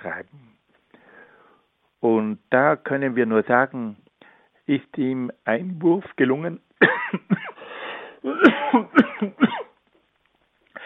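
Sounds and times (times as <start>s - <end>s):
speech: 2.0s - 4.0s, 4.7s - 7.3s, 8.7s - 9.6s
loud fit of harsh coughing: 6.8s - 9.8s.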